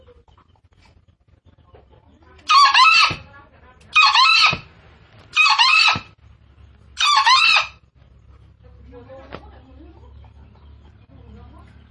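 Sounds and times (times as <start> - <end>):
Green junglefowl crowing: 2.5 - 3.3, 3.9 - 4.7, 5.3 - 6.2, 7.0 - 7.8.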